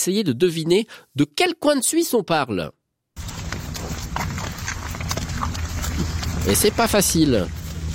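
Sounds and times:
speech: 0.0 - 2.8, 6.4 - 7.6
constant low rumble of noise: 3.2 - 7.9
hoofed animal hooves clopping on a hard surface while walking: 3.2 - 7.9.

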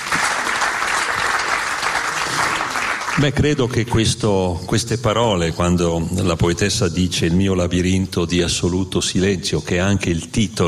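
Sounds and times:
audience applause after a poetry reading: 0.0 - 3.5
speech: 3.2 - 10.6.

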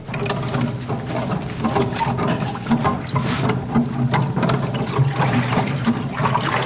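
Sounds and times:
large wooden paddle stirring water to dynamize it for spiritual agriculture: 0.0 - 6.6.

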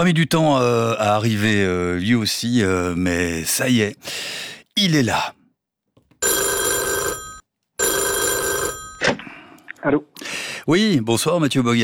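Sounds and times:
speech: 0.0 - 5.4, 9.8 - 11.8
mobile phone ringing with a British-style tone: 6.2 - 9.4.

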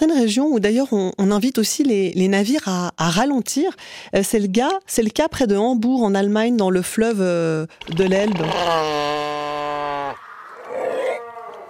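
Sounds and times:
speech: 0.0 - 9.2
seals calling: 8.4 - 11.6.

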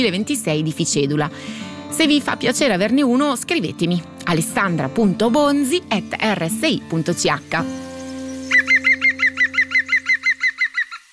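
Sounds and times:
speech: 0.0 - 7.9
green woodpecker laughing call: 7.8 - 11.1.

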